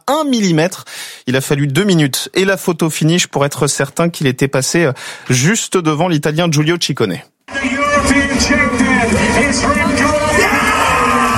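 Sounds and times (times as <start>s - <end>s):
speech: 0.2s - 10.1s
Belgian cyclist shouting with joy after winning a race: 7.5s - 11.3s
crowd noise: 7.5s - 11.3s.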